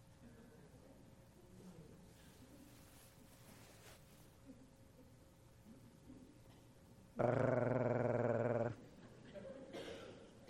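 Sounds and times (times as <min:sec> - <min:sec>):
dog growling: 0:07.2 - 0:08.8
laughter: 0:08.9 - 0:09.8.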